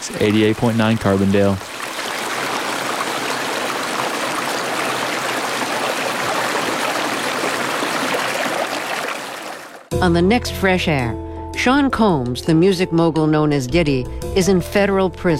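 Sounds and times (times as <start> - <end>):
creek water flowing: 0.0 - 9.9
speech: 0.1 - 1.7, 10.0 - 15.3.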